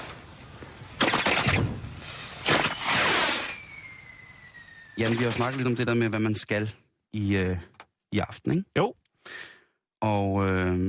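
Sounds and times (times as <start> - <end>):
firecrackers crackling: 0.0 - 5.9
fireworks exploding: 1.0 - 5.6
rising rocket whistle: 2.5 - 5.0
speech: 5.0 - 10.8.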